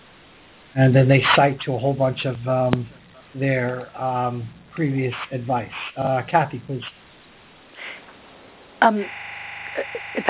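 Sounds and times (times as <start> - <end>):
speech: 0.7 - 7.0, 8.8 - 9.2
electronic mobile phone tone: 8.9 - 10.2.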